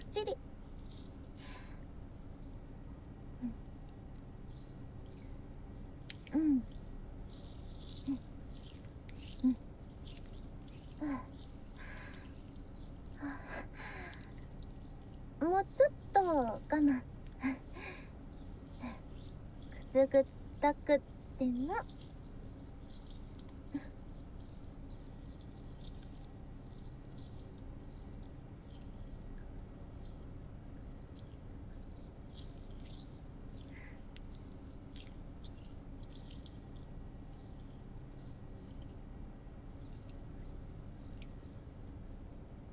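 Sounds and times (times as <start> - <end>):
wet squishing of honey rubbed over a foot before foot reflexology massage: 0.0 - 42.1
speech: 0.2 - 0.6, 20.1 - 22.1.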